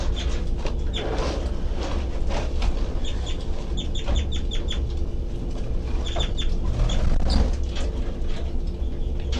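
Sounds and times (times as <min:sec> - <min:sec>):
steady low rumble: 0:00.0 - 0:09.3
baby birds' high-pitched calls: 0:03.0 - 0:04.9, 0:06.0 - 0:07.5.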